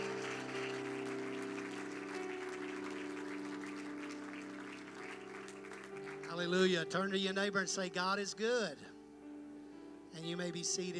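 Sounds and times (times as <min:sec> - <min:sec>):
large church audience applauding: 0:00.0 - 0:06.5
speech: 0:06.3 - 0:09.0, 0:10.2 - 0:10.9.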